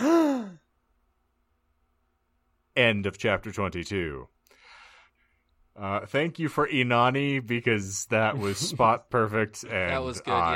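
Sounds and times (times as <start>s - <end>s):
dramatic voiced gasp: 0.0s - 0.6s
speech: 2.8s - 4.4s, 5.8s - 10.5s
laughter: 8.3s - 9.0s.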